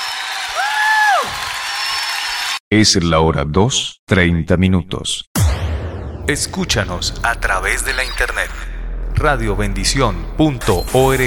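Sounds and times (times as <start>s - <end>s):
audience applauding loudly: 0.0s - 2.6s
rising-and-falling whistle or whoop: 0.6s - 2.1s
speech: 2.7s - 5.3s, 6.3s - 11.2s.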